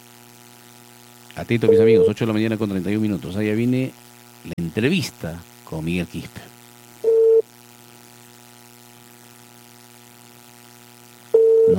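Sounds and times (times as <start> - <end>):
faint steady telephone line hum: 0.0 - 11.7
speech: 1.4 - 6.5
ringback tone of an unanswered telephone call: 1.7 - 2.2, 7.0 - 7.4, 11.3 - 11.7.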